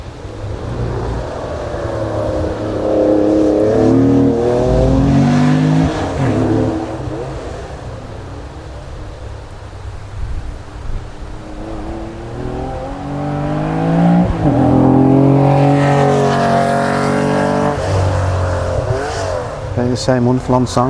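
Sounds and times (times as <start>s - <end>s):
Porsche 911 sports car engine racing on a circuit lap: 0.0s - 19.9s
speech: 20.0s - 20.8s.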